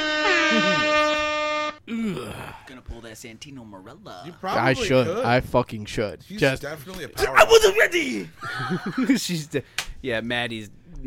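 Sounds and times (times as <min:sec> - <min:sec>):
loud air horn blast: 0:00.0 - 0:01.9
speech: 0:02.6 - 0:11.0
laughter: 0:08.3 - 0:09.4.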